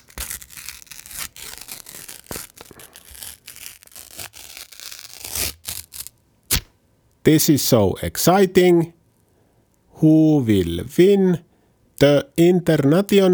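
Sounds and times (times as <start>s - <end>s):
paper envelope being torn open: 0.0s - 6.7s
speech: 7.3s - 9.0s, 10.0s - 13.3s.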